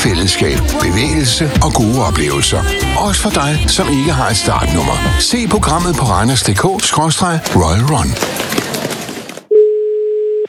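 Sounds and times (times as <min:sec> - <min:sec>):
speech: 0:00.0 - 0:08.6
telephone ringback tone of an outgoing call: 0:09.5 - 0:10.4.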